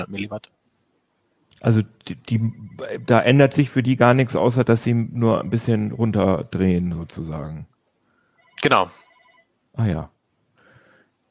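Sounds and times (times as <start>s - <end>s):
speech: 0.0s - 0.6s, 1.6s - 7.7s, 8.6s - 9.0s, 9.8s - 10.1s
mobile phone ringing with a short electronic tone: 8.4s - 9.5s.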